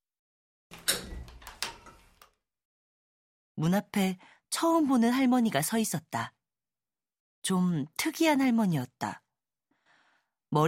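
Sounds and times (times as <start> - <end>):
front door latch click: 0.7 - 2.1
front door creaking and scraping open: 0.7 - 2.4
speech: 3.6 - 6.4, 7.4 - 9.2.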